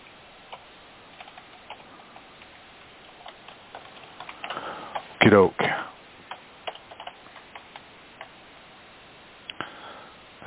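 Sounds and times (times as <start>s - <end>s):
typing on a computer keyboard: 0.5s - 1.8s, 3.1s - 5.1s, 6.3s - 8.3s
speech: 5.3s - 5.9s.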